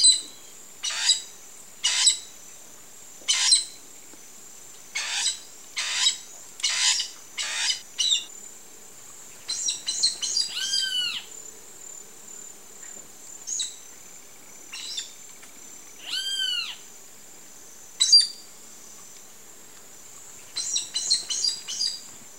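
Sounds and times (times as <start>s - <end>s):
steady high hiss: 0.0s - 22.3s
bird giving harsh raspy calls: 6.7s - 8.3s.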